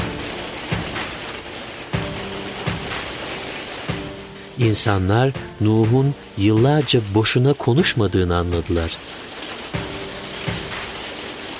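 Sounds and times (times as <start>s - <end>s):
heavy storm rain: 0.0s - 11.5s
speech: 4.6s - 9.2s.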